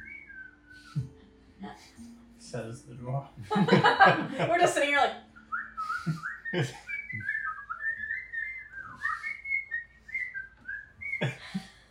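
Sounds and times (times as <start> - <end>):
person whistling imitating bird calls: 0.0 - 1.2, 5.4 - 11.4
speech: 1.0 - 5.3, 6.0 - 6.9
laughter: 3.4 - 4.8, 5.9 - 7.2.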